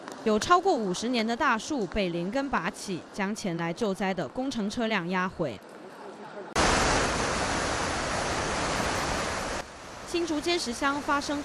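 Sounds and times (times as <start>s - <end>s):
speech: 0.2s - 5.7s, 10.1s - 11.4s
strong gusting typhoon wind in Taipei Taiwan: 6.6s - 10.4s.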